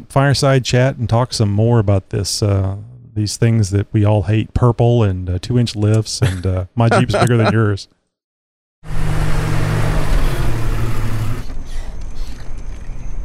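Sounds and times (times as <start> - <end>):
speech: 0.0 - 8.0, 8.8 - 9.1
laughter: 6.2 - 7.8
Jeep motor whirring and rumbling: 8.8 - 12.8.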